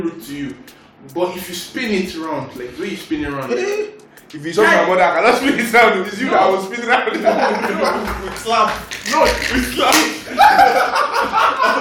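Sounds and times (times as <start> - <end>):
speech: 0.0 - 11.7
people chuckling: 7.1 - 11.7
sharp hand slaps: 8.0 - 10.4.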